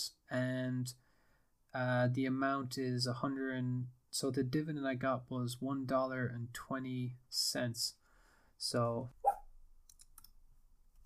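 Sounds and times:
speech: 0:00.0 - 0:01.0, 0:01.7 - 0:08.0, 0:08.6 - 0:09.2
dog barking: 0:09.2 - 0:09.4.

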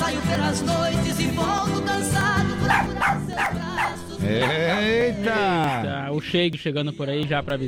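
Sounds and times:
busy music or noise: 0:00.0 - 0:07.6
speech: 0:00.4 - 0:02.2, 0:04.3 - 0:07.6
small dog barking: 0:02.6 - 0:05.9.

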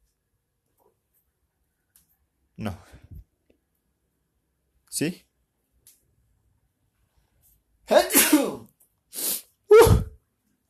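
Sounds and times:
speech: 0:02.6 - 0:03.0, 0:05.0 - 0:05.3
person sneezing: 0:08.0 - 0:08.6, 0:09.2 - 0:10.2.

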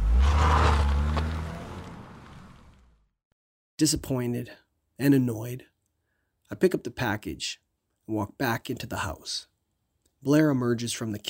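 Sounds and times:
delivery car engine rumbling as it pulls away: 0:00.0 - 0:03.0
speech: 0:03.8 - 0:05.7, 0:06.5 - 0:09.5, 0:10.2 - 0:11.2.

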